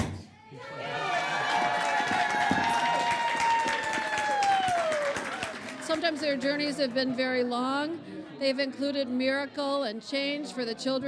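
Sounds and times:
kindergarten class of young children cheering: 0.5 - 5.8
kindergarten class of young children clapping: 1.2 - 7.2
speech: 6.0 - 11.0.

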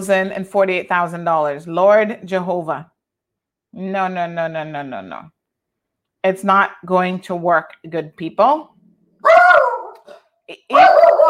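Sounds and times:
speech: 0.0 - 2.9, 3.7 - 5.4, 6.2 - 8.7, 9.5 - 11.2
dog barking: 9.2 - 11.2.

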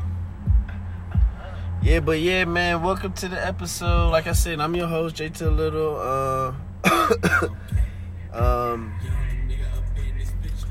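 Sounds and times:
low hum: 0.0 - 10.6
speech: 1.8 - 9.2
person clearing throat: 6.8 - 7.6
person coughing: 6.8 - 7.6.

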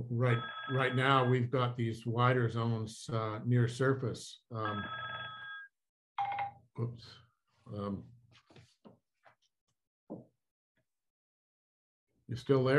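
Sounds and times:
speech: 0.0 - 5.1, 6.8 - 8.1, 12.3 - 12.7
telephone ringing with an electronic trill: 0.2 - 1.3, 4.6 - 6.5.

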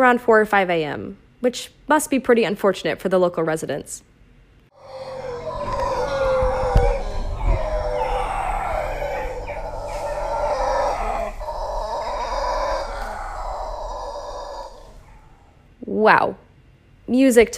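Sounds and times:
speech: 0.0 - 4.1, 15.9 - 16.4, 17.1 - 17.5
howler monkeys roaring in a guttural morning chorus: 4.8 - 15.6.

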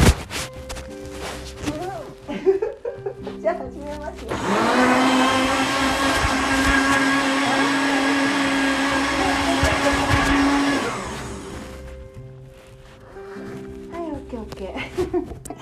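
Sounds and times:
person laughing: 2.2 - 3.4, 14.8 - 15.5
speech: 3.5 - 4.6
kitchen blender running: 4.3 - 11.7.

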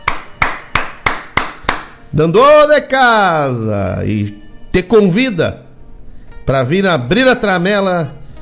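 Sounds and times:
crisp hand claps: 0.0 - 2.0
speech: 2.1 - 5.6, 6.4 - 8.2.

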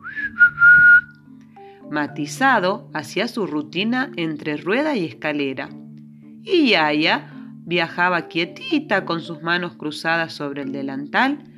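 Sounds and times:
soft human whistling a gentle tune: 0.0 - 1.2
speech: 1.9 - 5.8, 6.4 - 11.5.

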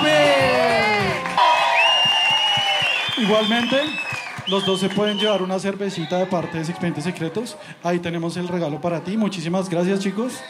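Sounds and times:
audience clapping: 0.0 - 5.9
crowd cheering with shouts and whoops: 0.0 - 7.5
speech: 3.3 - 10.4.

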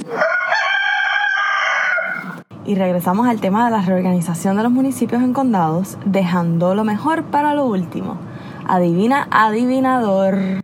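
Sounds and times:
rooster crowing: 0.0 - 2.4
speech: 2.7 - 10.6.

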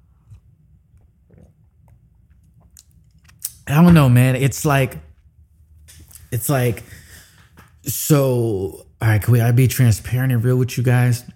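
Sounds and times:
low hum: 0.0 - 11.3
person sipping tea: 1.0 - 3.6
speech: 3.7 - 5.1, 6.3 - 7.0, 7.8 - 11.3.

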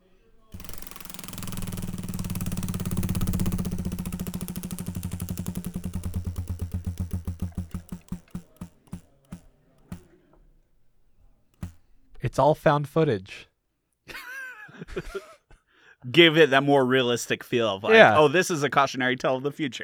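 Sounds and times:
big prize wheel spinning with pointer ratcheting: 0.2 - 10.1, 10.8 - 12.3
speech: 12.2 - 13.5, 14.9 - 15.3, 16.1 - 19.8.

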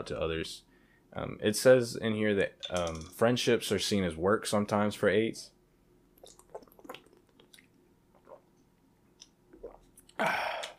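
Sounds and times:
speech: 0.0 - 5.6, 10.2 - 10.4
person sipping and swallowing water: 6.2 - 10.7.

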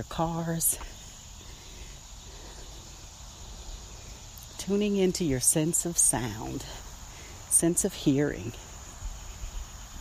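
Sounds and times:
speech: 0.0 - 1.0, 4.7 - 6.8, 7.6 - 8.7
cicadas chirping outdoors: 0.0 - 9.9.

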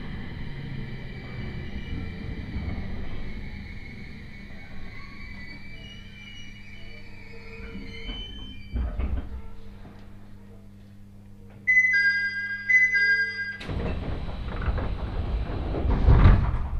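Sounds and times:
commuter train rumble on the Tohoku Main Line: 0.0 - 11.0, 11.9 - 16.7
brief chime inside a commuter train: 11.7 - 13.7.

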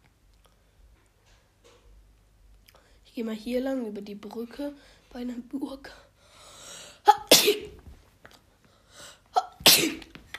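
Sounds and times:
quiet breathing: 2.7 - 3.1, 4.7 - 5.2, 5.8 - 7.1, 8.5 - 9.3
speech: 3.2 - 6.1
person sneezing: 7.0 - 7.8, 9.3 - 10.2.

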